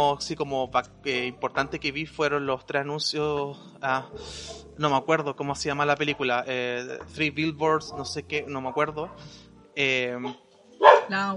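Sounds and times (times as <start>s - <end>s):
speech: 0.0s - 11.3s
dog barking: 4.1s - 4.8s, 7.8s - 9.2s, 10.2s - 11.3s.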